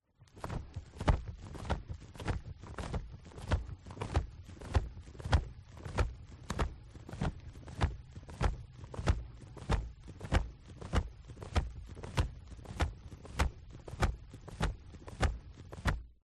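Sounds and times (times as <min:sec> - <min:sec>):
strong leathery bird wing flaps: 0:00.1 - 0:16.2.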